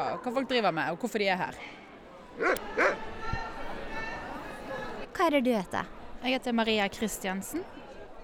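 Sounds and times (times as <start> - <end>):
speech: 0.0 - 1.8, 2.4 - 3.1, 5.2 - 7.8
crowd chatter at a dog show: 0.0 - 8.2
dog barking at a dog show: 2.4 - 3.0.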